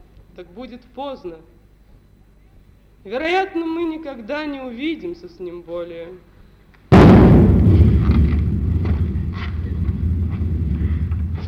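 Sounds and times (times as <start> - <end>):
speech: 0.4 - 1.6, 3.0 - 6.3
cannon shot fired as a salute: 6.9 - 11.4.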